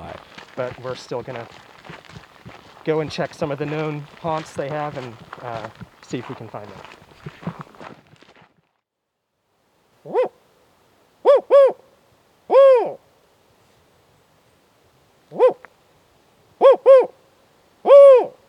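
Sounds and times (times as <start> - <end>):
speech: 0.6 - 2.0, 2.8 - 7.0
person imitating spotted owl hoots while hiking in a park: 10.0 - 10.3, 11.3 - 11.8, 12.5 - 13.0, 15.3 - 15.6, 16.6 - 17.2, 17.8 - 18.4.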